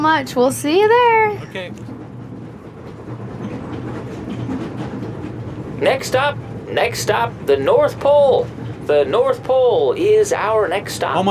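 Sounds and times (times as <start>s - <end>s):
speech: 0.0s - 1.9s, 5.8s - 11.2s
train ride with continuous low mechanical drone: 0.0s - 11.2s.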